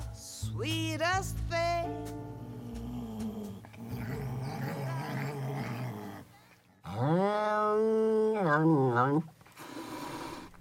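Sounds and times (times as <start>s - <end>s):
speech: 0.6s - 2.0s
angry European wildcat growling and yowling: 2.4s - 6.3s, 6.8s - 10.5s.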